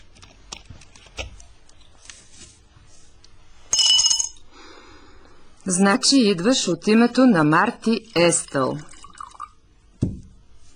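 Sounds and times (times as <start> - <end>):
glass clinking and tapping: 3.7 - 4.4
speech: 5.6 - 8.9
liquid poured into a glass: 8.0 - 9.6.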